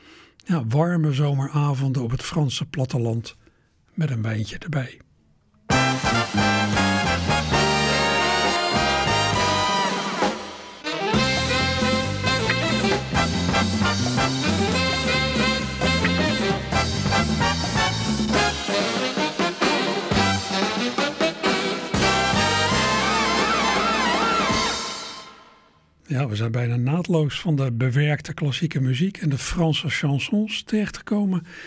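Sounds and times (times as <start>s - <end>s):
speech: 0.5s - 3.4s, 4.0s - 5.1s, 6.1s - 7.3s, 26.1s - 31.6s
bright instrumental TV sports programme theme tune with brass-like stabs: 5.7s - 25.8s.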